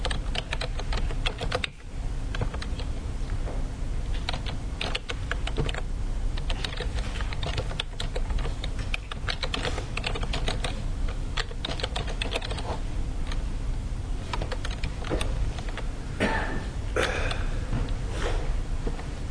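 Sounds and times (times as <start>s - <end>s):
typing on an upside-down computer keyboard: 0.0s - 2.9s, 4.2s - 5.8s, 6.4s - 12.7s, 14.2s - 15.8s
low hum: 0.0s - 19.2s.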